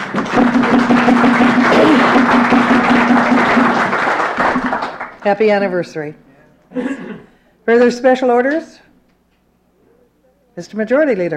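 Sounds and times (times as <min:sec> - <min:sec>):
large crowd applauding in a legislative House chamber: 0:00.0 - 0:05.3
speech: 0:05.2 - 0:07.0, 0:07.7 - 0:08.8, 0:10.6 - 0:11.3.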